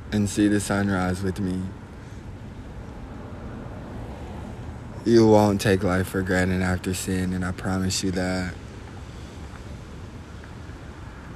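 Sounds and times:
low rumble of wind: 0.0 - 11.3
speech: 0.1 - 1.8, 5.0 - 8.6
gentle wash of calm ocean waves at sunrise: 1.2 - 6.0, 7.6 - 11.3.

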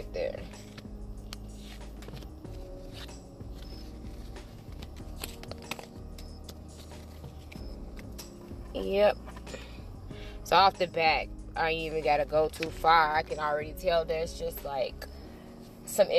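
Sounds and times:
deck of cards being shuffled: 0.4 - 9.6
speech: 8.8 - 9.3, 10.5 - 15.0, 16.0 - 16.1.

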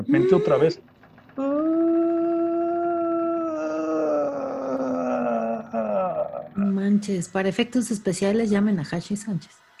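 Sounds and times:
voice imitating a ghost's mournful wailing: 0.0 - 0.7, 1.4 - 6.7
speech: 0.0 - 1.6, 6.8 - 9.7.

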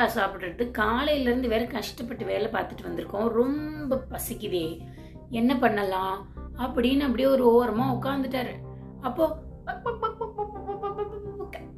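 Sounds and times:
speech: 0.0 - 10.0
person imitating a hen clucking: 9.7 - 11.7.

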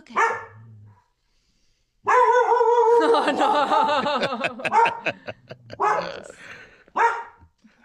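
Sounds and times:
dog barking: 0.1 - 0.6, 2.0 - 3.0, 4.6 - 5.2, 5.8 - 6.2, 7.0 - 7.4
laughter: 3.0 - 6.8
speech: 3.2 - 7.2.

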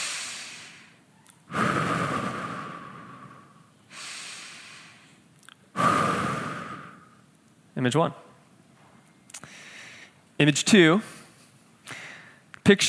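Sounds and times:
slow deep rhythmic breathing: 0.0 - 7.2, 9.4 - 10.2, 11.2 - 12.5
speech: 7.8 - 8.3, 10.4 - 11.2, 12.7 - 12.8.

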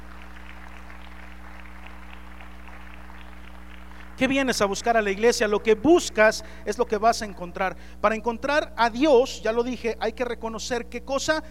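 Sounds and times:
crowd clapping steadily: 0.0 - 5.6
low electrical hum: 0.0 - 11.4
speech: 4.2 - 11.4.

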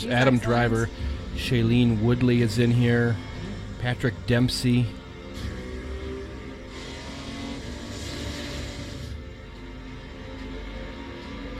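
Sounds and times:
speech: 0.0 - 5.5
1957 Ferrari era racing cars accelerating: 0.0 - 11.5.

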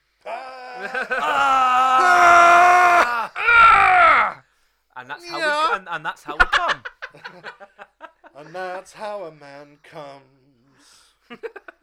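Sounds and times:
man's strained anime-style power-up scream: 0.3 - 4.4, 5.2 - 5.8
laughter: 0.8 - 1.6, 5.4 - 8.5, 11.3 - 11.8
speech: 0.8 - 1.6, 5.1 - 7.7.

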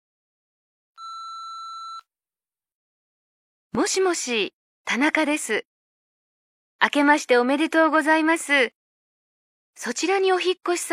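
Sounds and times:
electronic answering machine beep before a recorded phone message: 1.0 - 2.0
speech: 3.8 - 5.7, 6.8 - 8.8, 9.8 - 10.9.

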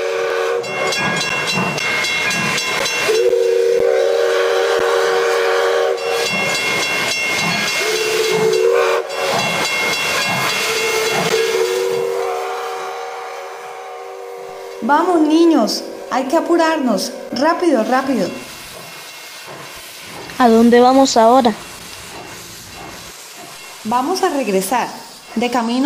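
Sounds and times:
steam train whistle blasts: 0.0 - 1.0, 2.8 - 18.5
steam train hissing steam: 0.0 - 25.8
steam train rhythmic chugging: 0.0 - 25.8
speech: 15.0 - 18.4, 20.4 - 21.7, 23.9 - 25.8.

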